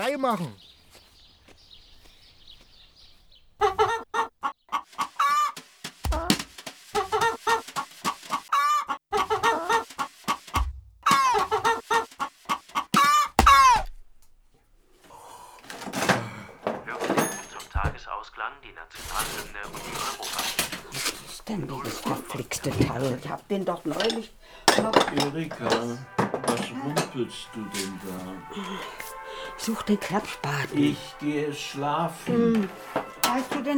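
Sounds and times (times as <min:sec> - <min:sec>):
speech: 0:00.1 - 0:00.7, 0:23.5 - 0:24.3, 0:27.2 - 0:33.7
hen clucking: 0:02.0 - 0:14.0, 0:17.8 - 0:25.3
rustling and clattering noises: 0:04.8 - 0:08.5, 0:09.2 - 0:28.4, 0:32.7 - 0:33.7.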